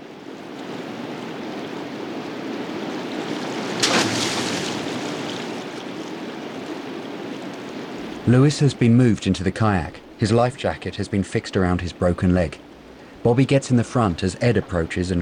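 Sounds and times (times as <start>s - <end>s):
rushing river water: 0.0s - 15.2s
corpse weighted with rock and rope splashing into a river: 3.3s - 6.2s
speech: 8.3s - 12.6s, 13.2s - 15.2s.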